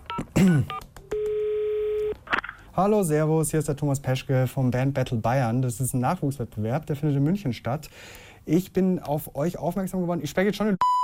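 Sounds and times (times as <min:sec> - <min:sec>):
telephone dial tone as a call is placed: 0:00.1 - 0:02.2
speech: 0:02.8 - 0:10.8
breath and voice sounds: 0:07.9 - 0:08.5.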